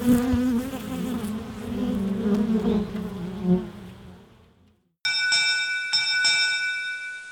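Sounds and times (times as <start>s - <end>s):
dense swarm of honeybees buzzing: 0.0s - 4.6s
bright ringing bell-like tones struck in a slow rhythm: 5.1s - 7.3s.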